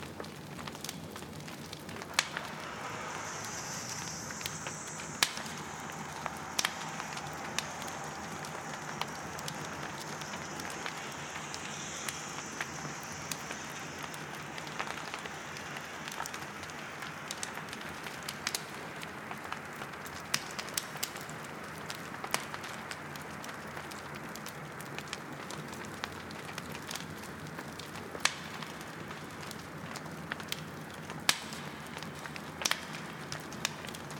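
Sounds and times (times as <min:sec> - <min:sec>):
faint high whine: 0:00.0 - 0:20.7
campfire crackling with sharp pops: 0:00.0 - 0:34.1
soft hiss: 0:00.0 - 0:34.1.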